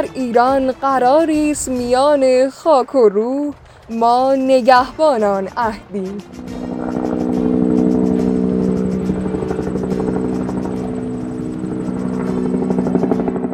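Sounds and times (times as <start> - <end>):
speech: 0.0 - 6.6
helicopter rotor blades thumping over the mountains: 5.6 - 13.5.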